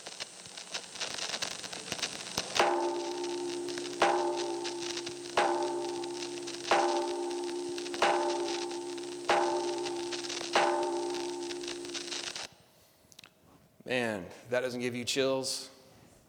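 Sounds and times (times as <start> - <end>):
steady hiss: 0.0 - 16.2
large bell in Philadelphia struck with a mallet: 2.6 - 12.4
speech: 14.5 - 15.7.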